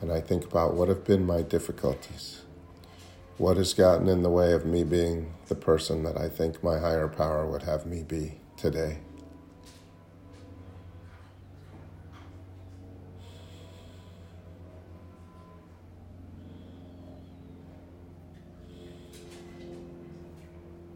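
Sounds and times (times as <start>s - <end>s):
steady low humming drone: 0.0s - 20.9s
speech: 0.1s - 2.4s, 3.4s - 9.1s
soft nasal inhale during meditation: 13.1s - 15.0s, 16.2s - 17.6s, 18.6s - 19.6s.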